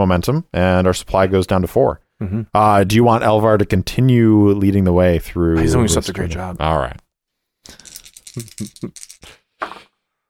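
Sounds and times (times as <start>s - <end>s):
speech: 0.0s - 7.0s, 7.7s - 9.8s
action die and two challenge dice rattling across a hard surface: 7.7s - 9.3s.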